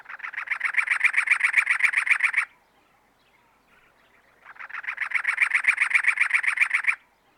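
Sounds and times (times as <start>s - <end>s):
cactus wren harsh rapid chattering call: 0.0s - 2.5s, 4.4s - 7.0s.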